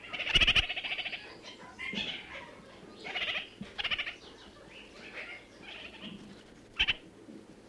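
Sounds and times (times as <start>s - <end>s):
red-crowned parakeet chattering in New Zealand: 0.1s - 1.1s, 3.1s - 4.1s, 6.8s - 7.1s.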